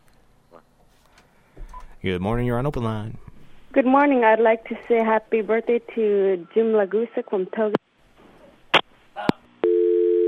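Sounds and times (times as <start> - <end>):
speech: 2.0 - 7.8
loud steady telephone dial tone: 9.6 - 10.2.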